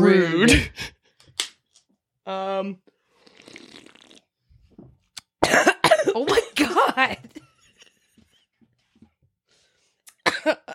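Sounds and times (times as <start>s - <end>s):
speech: 0.0s - 1.0s, 2.3s - 2.9s, 5.5s - 7.4s, 10.4s - 10.7s
person coughing into a microphone: 0.4s - 1.0s, 5.4s - 7.1s, 10.2s - 10.7s.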